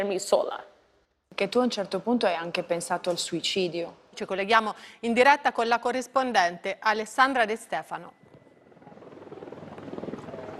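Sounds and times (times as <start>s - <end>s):
speech: 0.0s - 0.7s, 1.3s - 8.2s
drone buzzing overhead: 8.2s - 10.5s.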